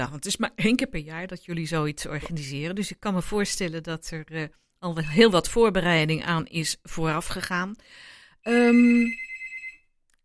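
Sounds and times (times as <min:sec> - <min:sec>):
speech: 0:00.0 - 0:09.3
telephone bell ringing: 0:08.5 - 0:10.0.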